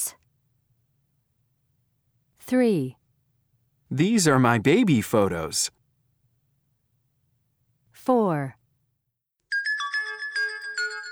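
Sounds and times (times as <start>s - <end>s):
speech: 2.5s - 3.0s, 3.9s - 5.8s, 8.0s - 8.6s
cell phone ringtone with bright electronic melody: 9.5s - 11.1s.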